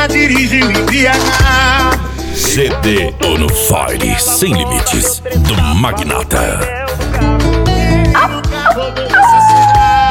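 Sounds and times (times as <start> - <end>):
speech: 0.2 - 1.7, 2.5 - 7.5
loud dense upbeat music: 2.1 - 7.3
female dog yipping and barking: 8.2 - 10.0.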